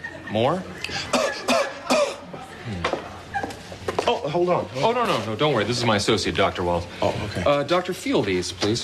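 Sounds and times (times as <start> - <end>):
speech: 0.3 - 1.2, 4.1 - 8.8
person coughing: 1.1 - 2.3.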